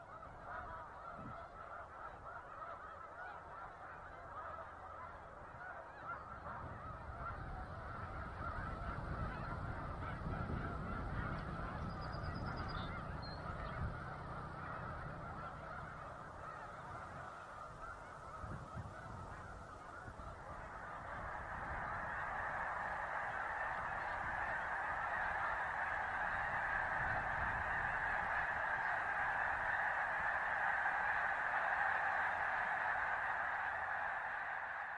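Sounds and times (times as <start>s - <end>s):
huge flock of snow geese honking and clamoring: 0.0s - 34.9s.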